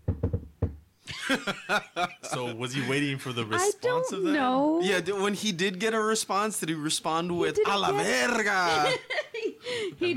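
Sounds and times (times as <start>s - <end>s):
knocking on a hard surface: 0.0s - 0.8s
laughter: 1.1s - 4.1s, 7.8s - 10.1s
speech: 1.3s - 9.2s, 9.8s - 10.1s.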